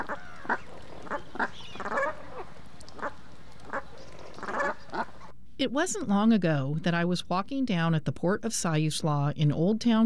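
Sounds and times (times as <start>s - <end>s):
small flock of geese honking: 0.0s - 5.3s
speech: 5.6s - 10.0s.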